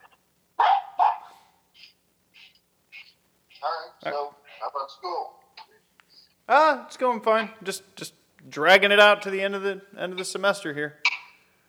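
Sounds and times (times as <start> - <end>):
dog yipping: 0.0 - 3.9
dog barking: 0.6 - 1.5
speech: 4.0 - 5.4, 6.5 - 11.0.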